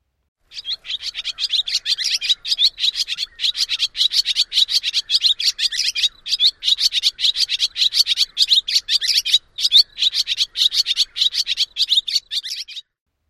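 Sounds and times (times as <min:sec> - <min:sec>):
barn swallow dawn song twittering: 0:00.5 - 0:13.0.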